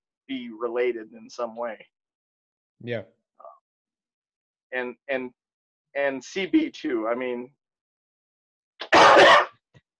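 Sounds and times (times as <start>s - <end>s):
speech: 0.3s - 2.0s, 2.8s - 3.2s, 4.7s - 5.4s, 6.0s - 7.6s
harsh cough from a person with a long-standing cough: 8.8s - 9.6s.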